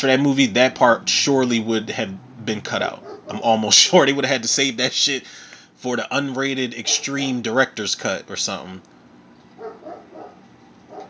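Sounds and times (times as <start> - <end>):
speech: 0.0 - 8.9
dog put outside barking: 3.0 - 3.3, 9.6 - 11.0.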